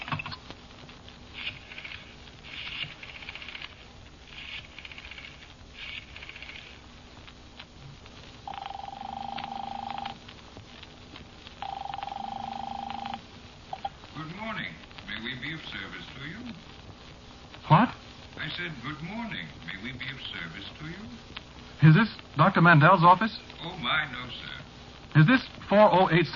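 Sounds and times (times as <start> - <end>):
long steady telephone ringing tones on the line: 8.4 - 10.2, 11.6 - 13.9
telephone number being dialed: 8.5 - 10.2, 11.6 - 13.2
speech: 18.6 - 24.2, 25.2 - 26.3.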